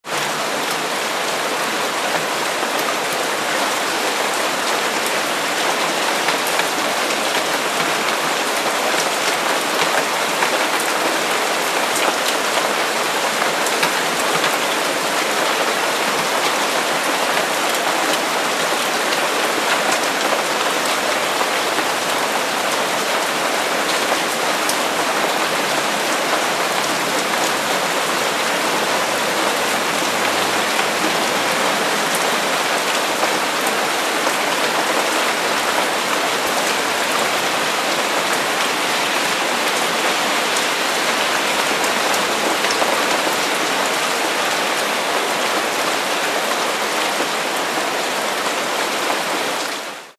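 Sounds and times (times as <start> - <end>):
rain on a roof: 0.0 - 50.1.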